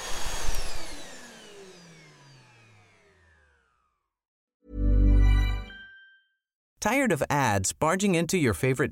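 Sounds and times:
vacuum cleaner motor running: 0:00.0 - 0:04.1
speech: 0:06.8 - 0:08.8.

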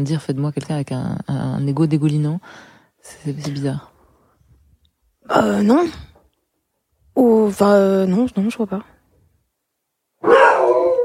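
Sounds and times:
speech: 0:00.0 - 0:03.9, 0:05.3 - 0:06.1, 0:07.2 - 0:08.9
dog letting out a drawn-out howl-like bark: 0:10.2 - 0:11.0.

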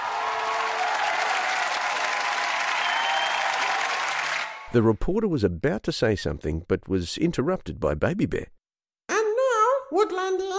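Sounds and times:
audience applause: 0:00.0 - 0:04.7
speech: 0:04.7 - 0:08.6, 0:09.9 - 0:10.5.

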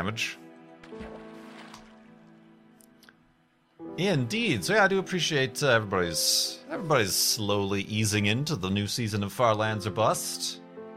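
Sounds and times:
speech: 0:00.0 - 0:01.1, 0:04.0 - 0:10.6
video game boat sloshing through water: 0:00.8 - 0:02.6.

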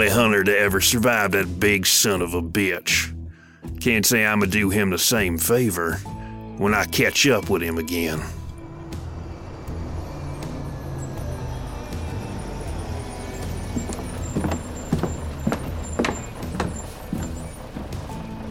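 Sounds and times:
convoy of trucks driving past with heavy engine rumble: 0:00.0 - 0:02.6, 0:04.6 - 0:18.4
speech: 0:00.0 - 0:08.4
squeaks and metallic clanks: 0:08.4 - 0:18.4.

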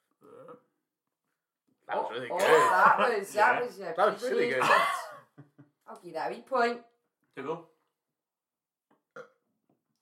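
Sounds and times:
burp: 0:00.2 - 0:00.8, 0:09.1 - 0:09.5
speech: 0:01.9 - 0:05.0, 0:06.0 - 0:07.7.

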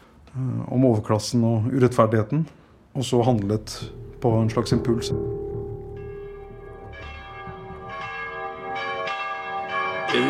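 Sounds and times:
speech: 0:00.4 - 0:05.4
low rumble of noise: 0:03.1 - 0:08.5
church bells of Santa Maria della Scala in Trastevere, Rome, ringing: 0:03.2 - 0:10.2.

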